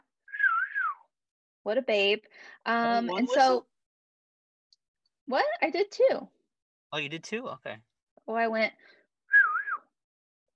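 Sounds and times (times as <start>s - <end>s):
admiring whistle made by mouth: 0.3s - 1.1s, 9.3s - 10.0s
speech: 1.6s - 3.7s, 5.3s - 9.0s.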